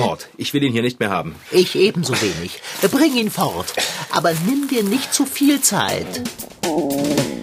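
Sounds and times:
speech: 0:00.0 - 0:07.2
stomach growling: 0:06.0 - 0:07.4.

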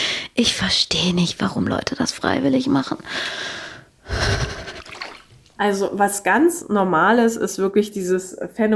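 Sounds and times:
speech: 0:00.4 - 0:04.5, 0:05.6 - 0:08.7
person gasping and panting while stepping into cold water: 0:03.2 - 0:05.2
faint watery splash: 0:04.3 - 0:05.6.

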